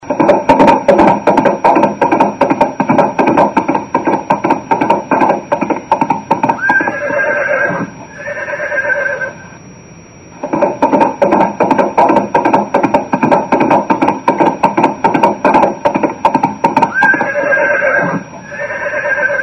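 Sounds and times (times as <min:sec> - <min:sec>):
horse galloping: 0:00.0 - 0:07.9, 0:10.4 - 0:19.4
horse neighing: 0:06.5 - 0:09.4, 0:16.8 - 0:19.4.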